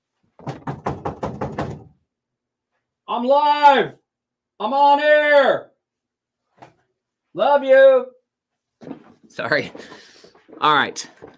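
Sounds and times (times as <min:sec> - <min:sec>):
knocking on a window pane: 0:00.4 - 0:02.0
speech: 0:03.2 - 0:04.0, 0:04.6 - 0:05.7, 0:07.4 - 0:08.2, 0:08.8 - 0:11.2.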